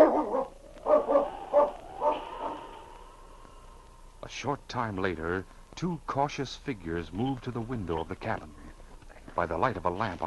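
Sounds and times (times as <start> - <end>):
dog barking and growling: 0.0 - 2.9
speech: 4.3 - 8.6, 9.4 - 10.2.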